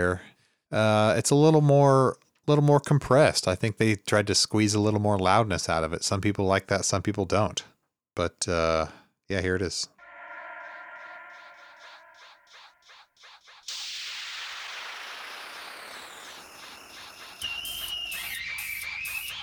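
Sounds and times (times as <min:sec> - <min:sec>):
speech: 0:00.0 - 0:09.9
thin high whistling tone, possibly sped-up saxophone: 0:10.0 - 0:19.4.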